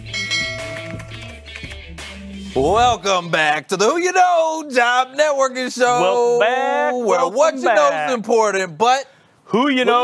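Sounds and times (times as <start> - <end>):
low steady musical backing: 0.0 - 3.5
bright ringing notification bell chime: 0.1 - 1.0
speech: 2.6 - 10.0.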